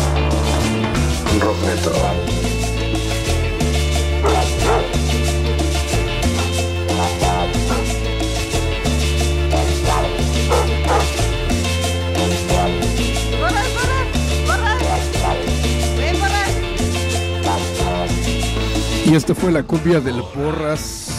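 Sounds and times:
loud music track with thumping bass line: 0.0 - 20.0
speech: 1.5 - 2.4, 19.1 - 21.1
dog barking and yipping: 4.2 - 5.0, 6.3 - 8.0, 9.5 - 11.2, 12.2 - 12.8, 14.6 - 15.6, 17.4 - 18.1.

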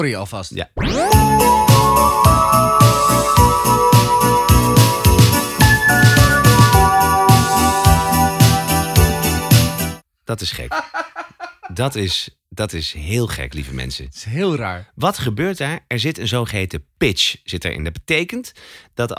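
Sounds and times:
speech: 0.0 - 2.7, 10.4 - 19.1
bell ringing with lingering sustain: 0.8 - 10.0
laughter: 10.7 - 11.9.

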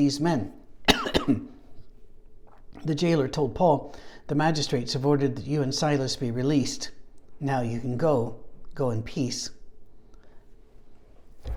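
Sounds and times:
speech: 0.0 - 0.6, 1.3 - 1.5, 2.8 - 9.6
single abrupt loud cough: 0.9 - 1.6.

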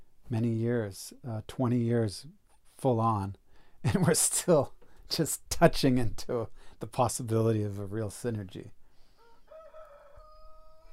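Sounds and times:
speech: 0.3 - 8.8
rooster crowing: 9.2 - 10.9.

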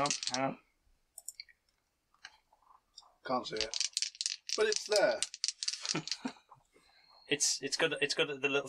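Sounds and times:
dice clattering across a tabletop: 0.0 - 0.6, 3.4 - 6.6
speech: 0.0 - 0.6, 3.3 - 3.8, 4.6 - 6.4, 7.3 - 8.6.

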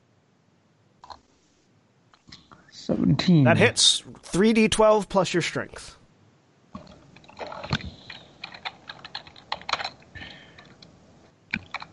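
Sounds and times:
speech: 2.9 - 6.0
fast typing on a computer keyboard: 6.8 - 10.9, 11.5 - 11.9.

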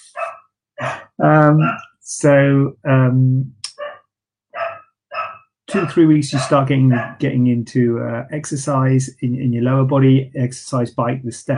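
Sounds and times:
dog barking excitedly: 0.1 - 0.5, 1.6 - 1.8, 4.6 - 7.2
speech: 1.2 - 3.6, 5.7 - 11.5.

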